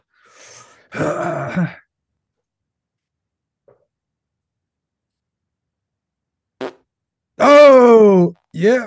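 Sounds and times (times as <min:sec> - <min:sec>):
speech: 0:00.9 - 0:01.8, 0:08.6 - 0:08.8
loud drawn-out fart: 0:06.6 - 0:06.9.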